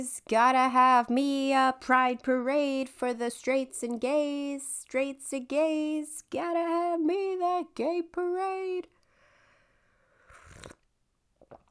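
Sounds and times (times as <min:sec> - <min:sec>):
speech: 0:00.0 - 0:09.0
wet chewing and slurping against a microphone: 0:10.3 - 0:10.9
mouth smacks: 0:10.3 - 0:11.6.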